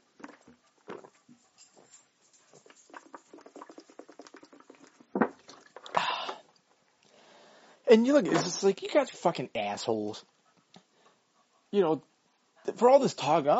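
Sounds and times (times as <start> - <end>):
person sipping water with small wet clicks: 0.0 - 1.2, 2.6 - 7.2
person gulping water: 2.9 - 7.1
speech: 7.9 - 10.3, 11.7 - 12.1, 12.8 - 13.5.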